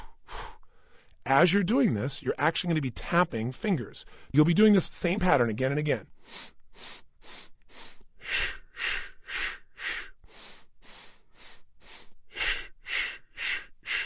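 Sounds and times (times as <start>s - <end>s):
short puffs out through the mouth in a breathing exercise: 0.0s - 0.6s
speech: 1.3s - 7.4s
quick sniffing inhales through the nose in a breathing exercise: 6.2s - 14.0s.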